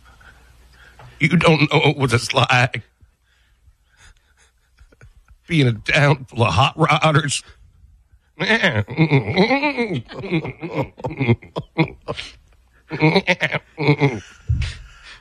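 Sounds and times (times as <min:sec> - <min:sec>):
speech: 0:01.2 - 0:02.9, 0:05.5 - 0:07.6, 0:08.4 - 0:14.8
man imitating a goat bleating: 0:08.4 - 0:12.1
laughter: 0:08.4 - 0:15.0.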